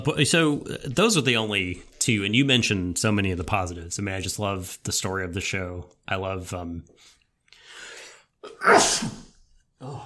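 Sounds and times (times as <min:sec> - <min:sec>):
speech: 0:00.0 - 0:07.1, 0:08.4 - 0:10.0
loud sneeze with breathy inhale: 0:08.4 - 0:09.4.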